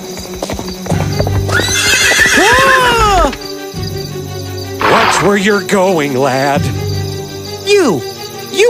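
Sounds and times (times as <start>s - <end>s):
horse hooves clip-clopping: 0.0s - 3.4s
horse neighing: 1.5s - 3.4s, 4.8s - 5.4s
speech: 5.2s - 6.8s, 7.7s - 8.6s.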